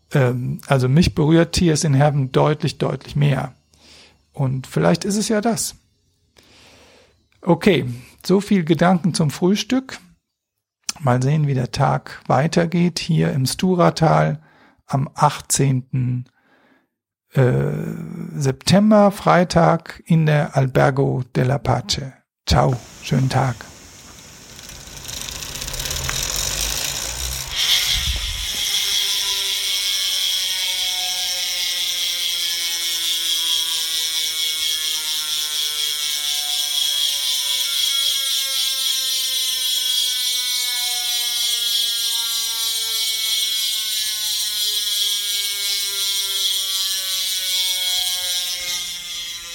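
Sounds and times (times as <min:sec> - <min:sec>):
speech: 0:00.1 - 0:03.6, 0:04.4 - 0:05.8, 0:07.4 - 0:10.1, 0:11.0 - 0:16.3, 0:17.3 - 0:23.7
spun bicycle wheel freewheel ratchet clicking in the Stura valley: 0:23.9 - 0:49.5.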